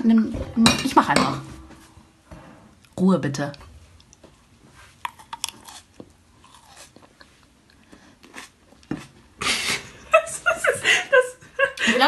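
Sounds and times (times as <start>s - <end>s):
speech: 0.0s - 1.5s, 3.0s - 3.7s
wet chewing and lip-smacking on a juicy mandarin: 5.0s - 9.2s
laughter: 9.4s - 12.0s.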